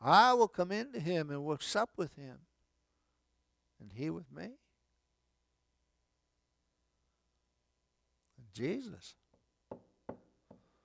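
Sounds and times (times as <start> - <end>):
speech: 0.0 - 2.5, 3.8 - 4.6, 8.5 - 9.2
firm knocking on a door: 9.7 - 10.7.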